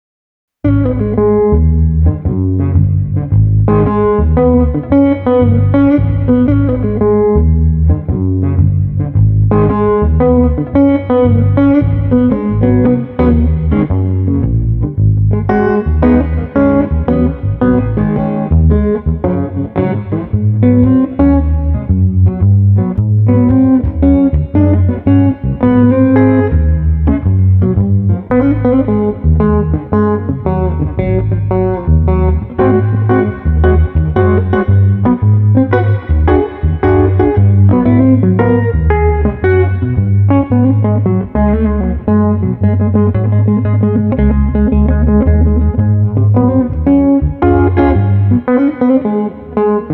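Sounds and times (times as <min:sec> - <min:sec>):
mellow funky street guitar bass: 0:00.6 - 0:49.9.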